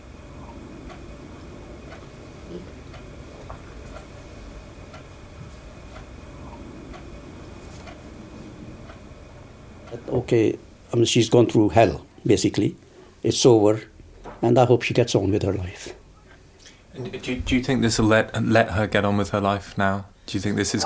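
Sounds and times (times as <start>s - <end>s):
constant low rumble of room noise: 0.0s - 20.8s
clock ticking: 0.8s - 1.1s, 1.8s - 7.2s, 8.8s - 9.1s
speech: 9.9s - 16.0s, 17.0s - 20.8s.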